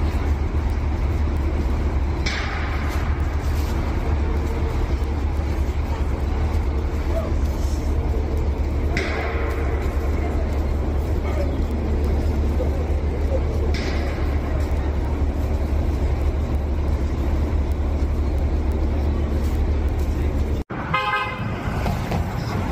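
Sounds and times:
heavy bus engines rumbling through a busy street in New York City: 0.0 - 22.6
traffic noise on a busy street: 0.0 - 22.6.

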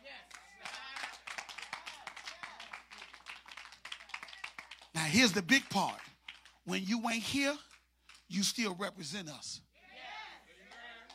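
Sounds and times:
audience clapping hands: 0.0 - 8.8, 10.6 - 11.1
speech: 5.1 - 7.7, 8.3 - 9.7.

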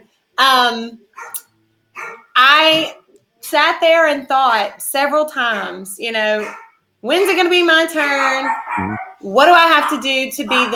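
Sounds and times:
speech: 0.4 - 1.5, 2.4 - 10.7
dogs barking: 1.1 - 2.4, 6.4 - 10.7.

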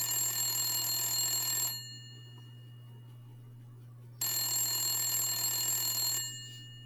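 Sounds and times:
telephone ringing: 0.0 - 2.7, 4.2 - 6.8
low steady hum: 1.8 - 4.8.

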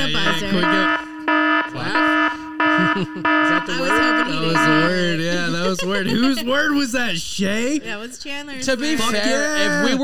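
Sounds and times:
speech: 0.0 - 1.0, 2.9 - 10.0
game show buzzer: 0.0 - 6.4
people laughing: 0.0 - 8.0, 8.7 - 10.0.

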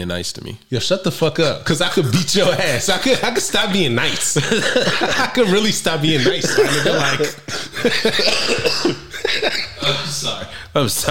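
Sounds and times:
speech: 0.0 - 11.0
laughter: 1.8 - 10.5
coughing fit of harsh hacking coughs: 6.2 - 10.5.

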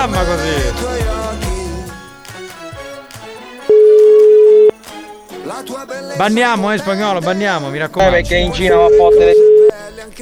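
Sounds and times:
speech: 0.0 - 1.4, 5.5 - 10.2
busy music: 0.0 - 10.2
phone ringing tone beep: 3.6 - 4.9, 7.8 - 10.2.

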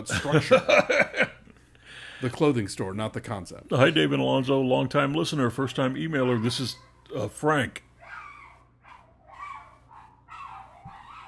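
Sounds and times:
speech: 0.0 - 1.1, 2.2 - 7.9
laughter: 0.0 - 1.5
neighboring dog barking and yelping on the sidewalk: 6.1 - 7.0, 8.0 - 11.2.

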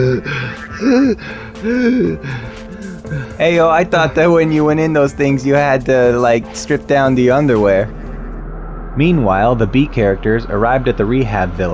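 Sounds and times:
man gasping and groaning for breath after a toxic gas leak: 0.0 - 3.4
speech: 0.0 - 8.0, 9.0 - 11.7.

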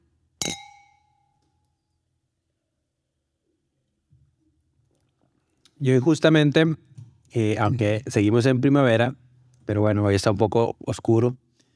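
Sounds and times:
wine glasses clinking in a toast: 0.4 - 1.4
speech: 5.8 - 11.4.

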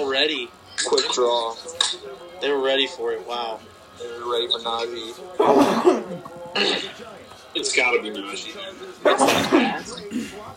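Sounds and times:
speech: 0.0 - 10.5
person sneezing: 9.0 - 10.3.

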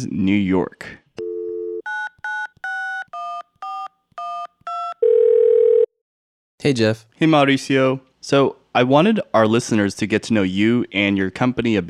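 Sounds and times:
speech: 0.0 - 1.0, 6.6 - 11.8
steady telephone dial tone: 1.2 - 5.9.

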